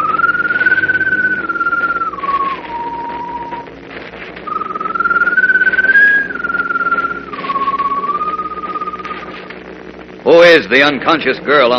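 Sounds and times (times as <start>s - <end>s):
bird whistling mournfully: 0.0s - 3.6s, 4.5s - 9.4s
low steady humming drone: 0.0s - 11.7s
speech: 10.7s - 11.7s.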